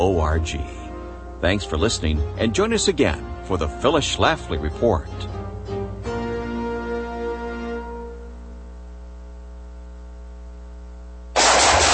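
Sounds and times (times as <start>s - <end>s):
speech: 0.0s - 0.8s, 1.4s - 5.4s
steady low electrical hum: 0.0s - 11.9s
rifle gunfire bursts: 11.4s - 11.9s.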